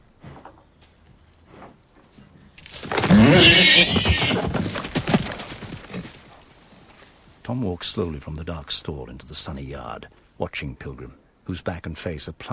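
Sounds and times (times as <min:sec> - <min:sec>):
horse galloping out into a yard: 0:02.7 - 0:06.5
horse whinnying: 0:02.8 - 0:04.9
speech: 0:07.5 - 0:12.5.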